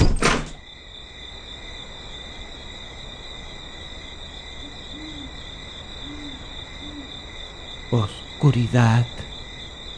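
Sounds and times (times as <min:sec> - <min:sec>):
door flung wide open: 0:00.0 - 0:00.5
speech: 0:07.9 - 0:09.3.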